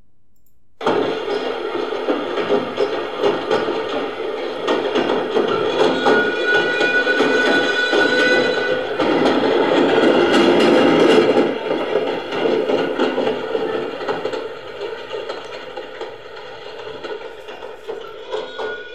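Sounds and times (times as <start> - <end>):
passenger train rumbling along the rails: 0.8 - 18.9
faint metallic squeals of train wheels: 2.8 - 11.4, 17.2 - 18.9.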